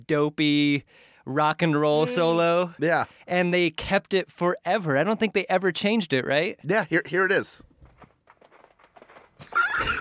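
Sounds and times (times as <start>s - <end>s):
speech: 0.1s - 7.7s, 9.4s - 9.9s
horse whinnying: 9.4s - 9.9s.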